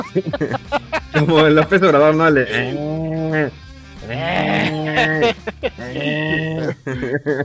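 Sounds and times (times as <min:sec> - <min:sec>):
laughter: 0:00.0 - 0:07.4
speech: 0:00.0 - 0:07.4
sheep bleating: 0:02.2 - 0:06.8.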